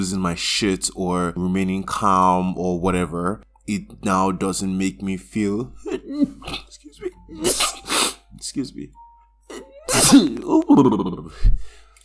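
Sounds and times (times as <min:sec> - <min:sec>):
speech: 0:00.0 - 0:11.8
person sneezing: 0:07.4 - 0:08.2, 0:09.8 - 0:10.4.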